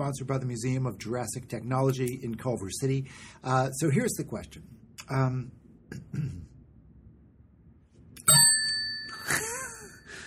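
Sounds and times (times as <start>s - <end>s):
speech: 0.0s - 6.5s
hand bell ringing: 8.2s - 10.1s.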